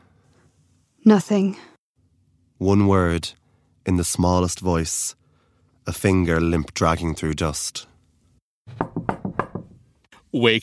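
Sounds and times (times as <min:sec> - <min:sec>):
speech: 0:01.0 - 0:01.7, 0:02.6 - 0:05.2, 0:05.8 - 0:07.9, 0:08.7 - 0:09.1, 0:10.3 - 0:10.6
man knocking on a wooden cupboard door: 0:08.7 - 0:09.8.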